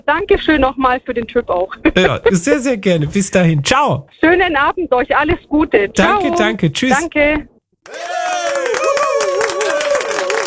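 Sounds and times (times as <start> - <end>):
speech: 0.1 - 8.1
loud cheering and whooping voices: 7.8 - 10.4
dense clapping: 7.9 - 10.4.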